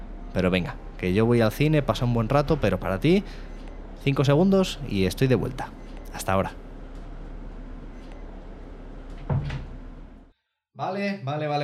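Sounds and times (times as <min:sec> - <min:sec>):
speech: 0:00.4 - 0:06.6, 0:10.8 - 0:11.6
bus door opening with pneumatic hiss and thunk: 0:09.1 - 0:09.8.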